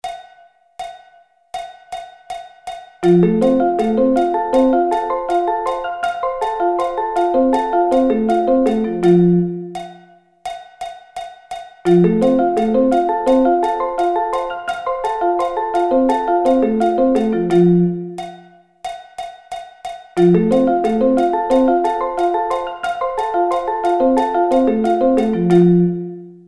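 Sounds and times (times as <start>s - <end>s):
F arpeggio inversions: 3.0s - 10.0s, 11.9s - 18.4s, 20.2s - 26.4s.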